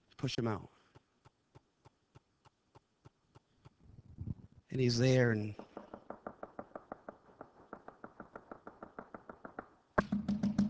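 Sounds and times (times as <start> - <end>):
speech: 0.2 - 0.8, 4.8 - 5.6
knocking on a door: 5.6 - 10.6.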